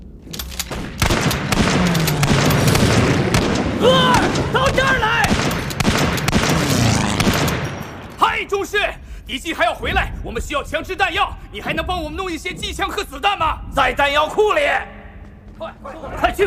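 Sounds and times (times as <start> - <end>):
loud rumbling explosions: 0.7 - 14.2
rapid gunfire bursts: 0.9 - 8.2.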